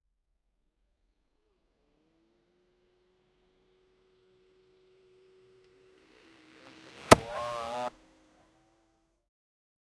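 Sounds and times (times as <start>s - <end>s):
motorbike jump: 7.1s - 7.9s.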